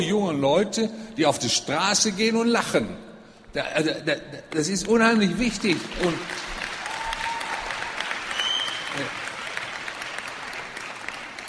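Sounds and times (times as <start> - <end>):
speech: 0.0 - 6.5
audience applause at a talk: 5.6 - 11.4.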